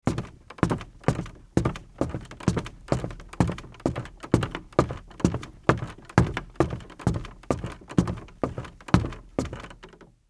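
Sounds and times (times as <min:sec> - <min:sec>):
sneaker footsteps on wood going down: 0:00.0 - 0:09.8.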